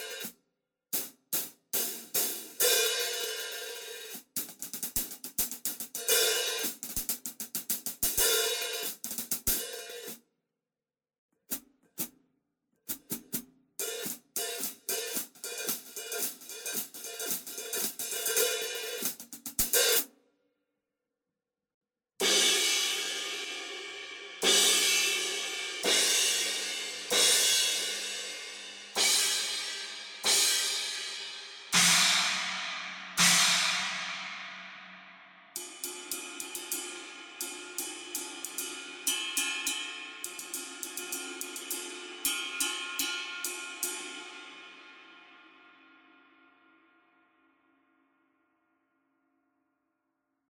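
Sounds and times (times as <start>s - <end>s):
drum kit hi-hat cymbals: 1.0s - 10.2s, 13.8s - 20.1s, 22.2s - 45.0s.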